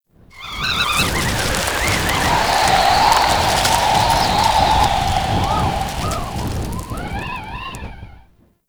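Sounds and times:
wind in a settlement: 0.3 - 8.3
debris: 0.4 - 8.2.

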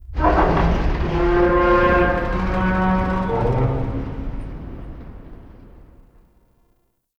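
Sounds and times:
ambient vocal in a tank: 0.2 - 5.6.

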